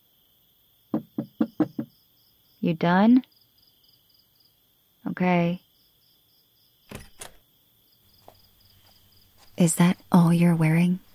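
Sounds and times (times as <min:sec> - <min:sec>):
knocking on a door: 0:00.9 - 0:02.0
speech: 0:02.6 - 0:03.3, 0:05.2 - 0:05.6, 0:09.6 - 0:11.0.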